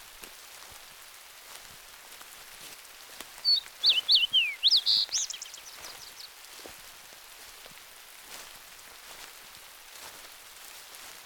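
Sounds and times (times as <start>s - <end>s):
bird singing high chirps and sliding whistles: 3.4s - 6.3s.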